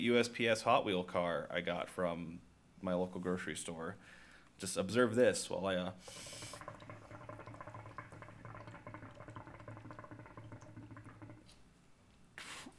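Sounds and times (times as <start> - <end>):
speech: 0.0 - 6.7
hookah water bubbling: 5.9 - 11.6.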